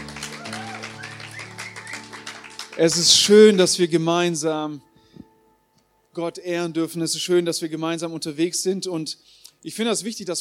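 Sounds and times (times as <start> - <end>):
audience applause: 0.0 - 3.6
speech: 2.8 - 4.9, 6.2 - 10.3.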